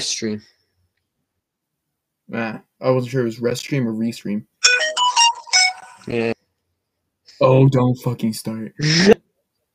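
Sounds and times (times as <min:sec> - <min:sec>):
speech: 0:00.0 - 0:00.6, 0:02.3 - 0:04.9, 0:06.0 - 0:06.4, 0:07.4 - 0:09.2
phone ringtone with bright electronic melody and buzzy sustained tone: 0:04.6 - 0:06.2.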